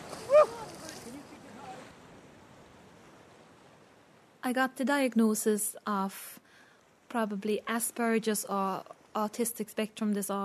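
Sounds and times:
feet kicking and splashing in shallow sea surf: 0.0s - 1.8s
speech: 4.5s - 6.4s, 7.1s - 10.4s.

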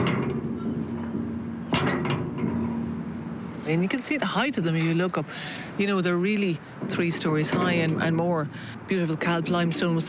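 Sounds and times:
heavy metal door lock clunk echoing off tall limestone and sandstone walls: 0.0s - 3.0s
speech: 3.7s - 10.0s.

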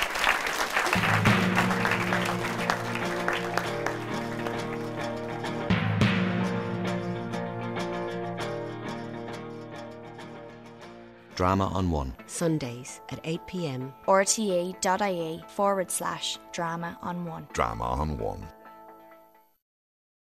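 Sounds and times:
audience applause: 0.0s - 5.7s
music: 0.0s - 19.6s
speech: 11.4s - 18.6s.

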